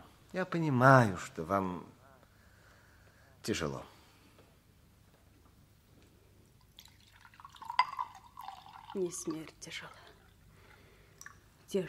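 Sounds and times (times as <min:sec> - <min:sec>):
speech: 0:00.3 - 0:02.0, 0:03.4 - 0:03.9, 0:09.0 - 0:10.0
water trickling into a glass: 0:06.6 - 0:11.4
light clink of glass: 0:07.2 - 0:09.0.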